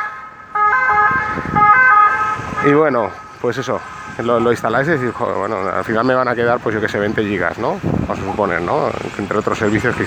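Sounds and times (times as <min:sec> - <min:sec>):
ambulance two-tone electronic siren passing by: 0:00.0 - 0:07.4
speech: 0:02.6 - 0:10.0.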